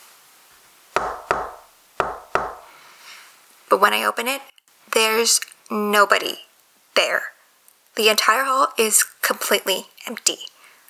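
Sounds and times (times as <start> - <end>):
knocking on a wooden door: 1.0 - 2.7
speech: 3.7 - 7.3, 8.0 - 10.5.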